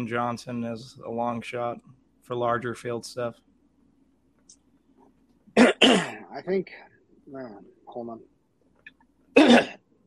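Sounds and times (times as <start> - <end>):
speech: 0.0 - 3.5, 5.8 - 8.3
cough: 5.6 - 6.3, 9.4 - 9.8.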